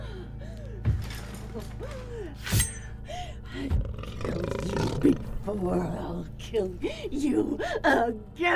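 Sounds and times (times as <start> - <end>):
rumbling backdrop: 0.0 - 8.5
low growling of mountain lion: 3.5 - 6.4
very large mountain lion roaring and snarling behind a door: 3.7 - 6.0
speech: 5.0 - 8.5.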